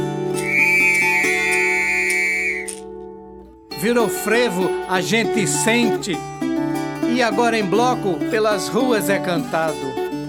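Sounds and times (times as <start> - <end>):
sustained instrumental backing with soft rhythmic pulses: 0.0 - 10.2
shrill whistle holding a long high note: 0.4 - 2.9
speech: 3.8 - 6.4, 7.2 - 10.0.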